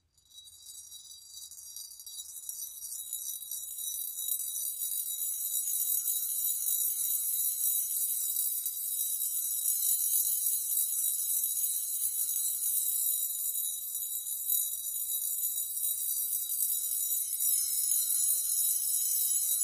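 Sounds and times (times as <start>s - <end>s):
BBs vibrating in bowed bowl: 0.1s - 19.6s
bowl being bowed: 16.9s - 19.6s.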